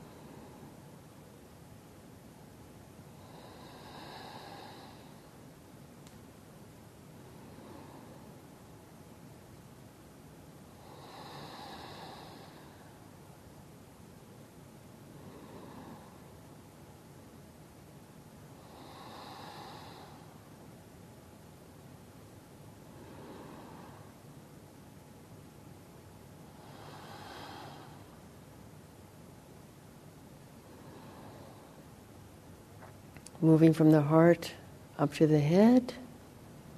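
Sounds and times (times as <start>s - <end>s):
slow deep breathing during a breathing practice: 0.0s - 1.0s, 3.1s - 5.4s, 7.2s - 8.6s, 10.7s - 13.2s, 15.1s - 16.6s, 18.6s - 20.6s, 22.8s - 24.3s, 26.5s - 28.4s, 30.6s - 32.1s
hiss: 0.0s - 36.7s
speech: 33.4s - 36.0s.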